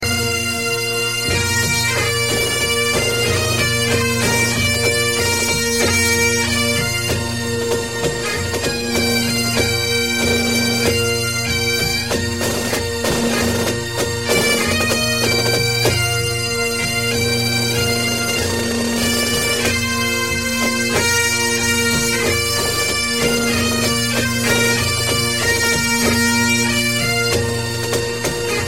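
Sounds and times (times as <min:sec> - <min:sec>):
bagpipes ringtone: 0:00.0 - 0:28.6.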